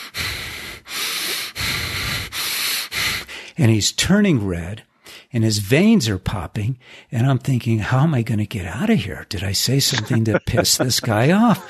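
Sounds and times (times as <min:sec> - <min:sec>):
person imitating heavy angry breathing: 0:00.0 - 0:03.6
speech: 0:03.6 - 0:11.6
laughter: 0:09.8 - 0:11.6.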